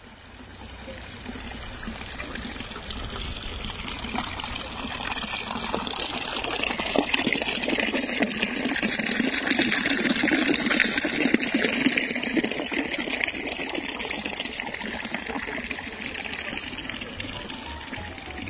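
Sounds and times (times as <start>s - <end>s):
water babbling from a fountain in a park: 0.0s - 18.4s.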